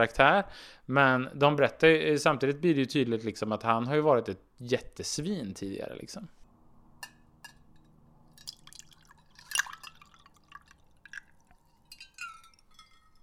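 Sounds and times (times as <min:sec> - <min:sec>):
speech: 0:00.0 - 0:06.4
sharp glass clink: 0:07.0 - 0:13.2
pink vodka poured into a glass: 0:08.4 - 0:13.2.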